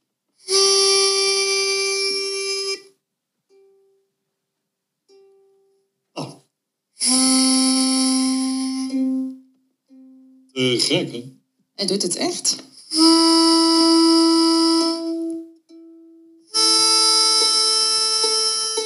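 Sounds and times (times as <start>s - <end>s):
ukulele pitch pipe sounding the G note: 0.5s - 2.8s, 7.0s - 11.2s, 12.8s - 18.8s
speech: 10.6s - 13.4s.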